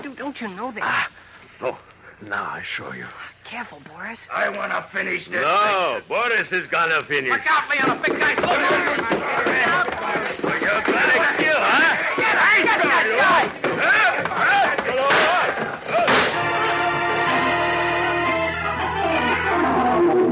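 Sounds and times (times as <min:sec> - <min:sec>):
speech: 0:00.2 - 0:11.9
man smashing another to the floor with a chair: 0:07.7 - 0:17.4
people shouting during a brawl: 0:07.8 - 0:20.2
gunman's shots hitting the walls: 0:15.0 - 0:16.6.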